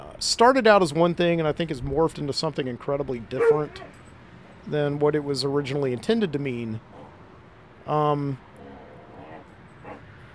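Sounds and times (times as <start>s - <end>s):
speech: 0.2s - 4.0s, 4.7s - 6.9s, 7.8s - 8.5s
dog barking: 3.4s - 3.9s
dogs whining and whimpering: 3.4s - 4.0s, 8.6s - 10.0s.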